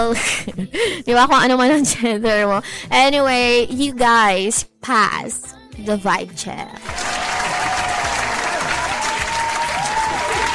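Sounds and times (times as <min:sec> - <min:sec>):
speech: 0:00.0 - 0:07.1
crowd applauding: 0:06.8 - 0:10.5.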